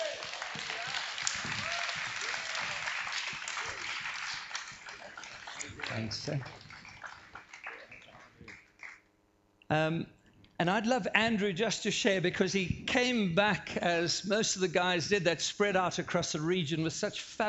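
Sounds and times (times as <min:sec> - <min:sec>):
whoops and cheers: 0:00.0 - 0:04.0
room full of people applauding: 0:00.0 - 0:09.1
speech: 0:06.0 - 0:06.6, 0:09.7 - 0:17.4.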